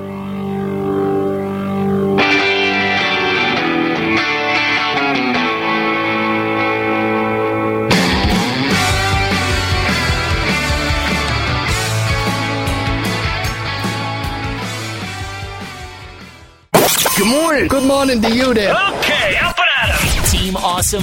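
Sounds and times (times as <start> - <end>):
sustained guitar chords: 0.0 - 18.2
loud rock song with full band: 0.2 - 16.6
driving drums: 7.9 - 16.4, 17.1 - 21.0
speech: 18.2 - 19.4, 20.8 - 21.0.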